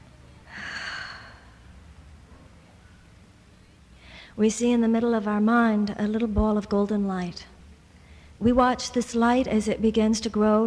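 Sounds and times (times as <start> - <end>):
group inhaling deeply during a guided meditation: 0.5 - 1.7
speech: 4.4 - 7.5, 8.4 - 10.6.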